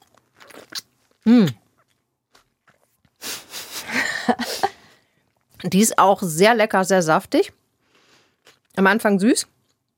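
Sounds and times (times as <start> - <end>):
biting into a juicy plum: 0.0 - 3.2
wet chewing and mouth noises: 0.0 - 3.2, 9.6 - 9.9
speech: 1.3 - 1.6, 5.7 - 7.6, 8.8 - 9.6.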